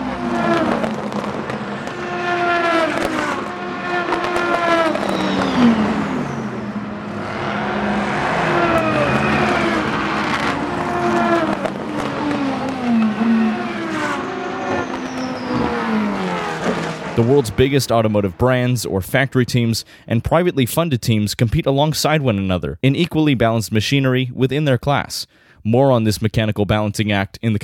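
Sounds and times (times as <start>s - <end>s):
sports car series prototypes and GT race cars roaring past on a track: 0.0s - 18.8s
speech: 17.3s - 27.6s.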